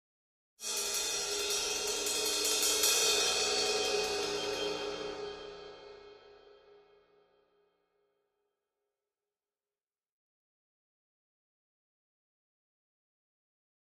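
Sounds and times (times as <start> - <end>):
single cymbal crescendo: 0.6 - 6.8.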